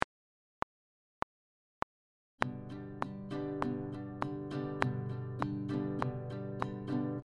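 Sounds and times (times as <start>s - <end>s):
guitar playing an easy strumming pattern: 2.4s - 7.2s.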